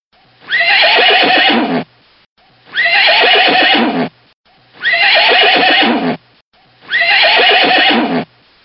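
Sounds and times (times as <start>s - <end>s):
horse neighing: 0.5s - 1.8s, 2.8s - 4.1s, 4.8s - 6.2s, 6.9s - 8.3s.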